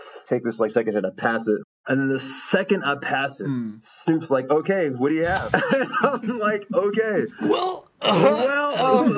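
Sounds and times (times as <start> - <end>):
speech: 0.3 - 9.1
stifled cough turning into throaty clearing: 5.2 - 6.2, 7.4 - 9.1
laughter: 5.2 - 9.1.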